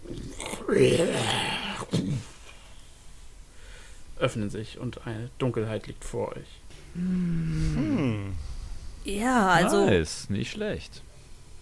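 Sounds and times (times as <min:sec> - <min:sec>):
person voicing a low snarling growl like a wild beast: 0:00.3 - 0:01.9, 0:07.0 - 0:08.4
speech: 0:00.7 - 0:01.6, 0:04.2 - 0:11.1.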